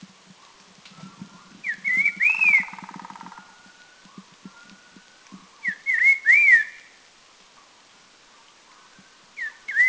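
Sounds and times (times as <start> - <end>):
Red-faced liocichla whistling slurred swooping phrases at Doi Lang in northern Thailand: 1.6 - 2.8, 5.6 - 6.9, 9.4 - 9.8.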